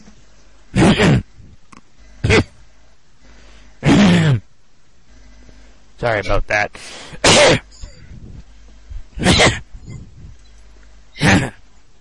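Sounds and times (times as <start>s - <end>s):
person clearing throat: 0.7s - 1.3s, 2.2s - 2.6s, 3.8s - 4.5s, 7.1s - 8.0s, 9.2s - 9.7s, 11.2s - 11.6s
person coughing: 0.7s - 1.3s, 2.2s - 2.6s, 3.8s - 4.4s, 7.0s - 8.0s, 9.2s - 9.7s, 11.2s - 11.6s
speech: 1.0s - 1.2s, 6.0s - 7.6s.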